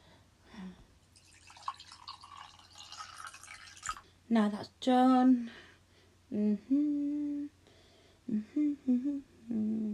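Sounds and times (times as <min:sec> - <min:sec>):
hot water pouring into a hot water bottle: 0:01.1 - 0:04.0
speech: 0:04.3 - 0:05.6, 0:06.3 - 0:07.3, 0:08.5 - 0:09.9.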